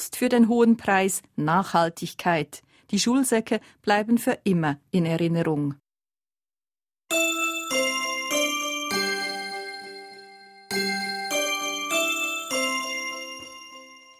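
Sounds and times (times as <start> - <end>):
speech: 0.0 - 5.8
Big Ben bell chime melody in London: 7.1 - 14.1.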